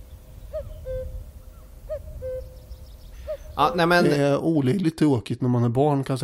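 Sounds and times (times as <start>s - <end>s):
common cuckoo calling: 0.0s - 4.2s
speech: 3.6s - 6.2s.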